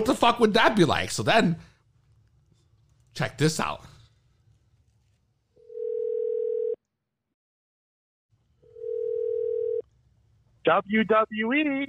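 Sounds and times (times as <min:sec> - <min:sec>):
speech: 0:00.0 - 0:01.7, 0:03.2 - 0:03.9, 0:10.6 - 0:11.8
telephone dial tone: 0:05.7 - 0:06.8, 0:08.7 - 0:09.8.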